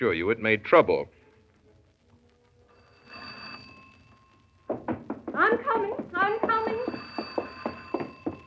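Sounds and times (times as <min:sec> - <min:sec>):
speech: 0:00.0 - 0:01.2
old wall-mounted telephone bell ringing: 0:02.7 - 0:08.4.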